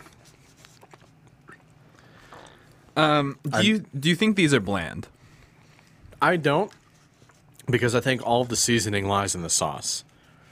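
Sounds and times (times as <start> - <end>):
people chewing a pizza snack: 0.0 - 3.0, 5.2 - 7.7
low hum: 0.0 - 10.4
speech: 3.0 - 5.2, 6.2 - 6.8, 7.7 - 10.1.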